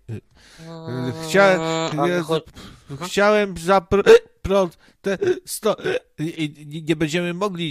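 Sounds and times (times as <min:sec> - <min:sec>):
person imitating hiccups with voiced gulping bursts: 0:00.1 - 0:02.3, 0:04.0 - 0:04.4, 0:05.1 - 0:06.2
speech: 0:01.0 - 0:07.6.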